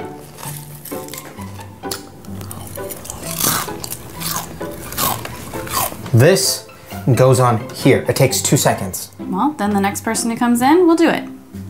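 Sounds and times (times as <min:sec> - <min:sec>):
loud crunchy chewing with wet mouth sounds: 0:00.0 - 0:06.2
speech: 0:06.2 - 0:11.3.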